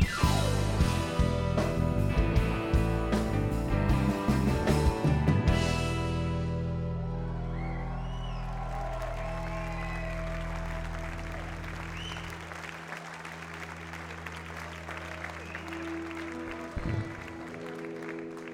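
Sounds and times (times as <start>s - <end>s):
concert crowd noise: 0.0s - 18.5s
concert audience applauding: 7.0s - 18.5s.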